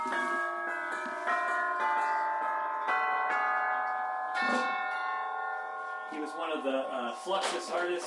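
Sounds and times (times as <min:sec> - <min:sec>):
orchestral chimes struck: 0:00.0 - 0:08.0
speech: 0:06.5 - 0:08.0.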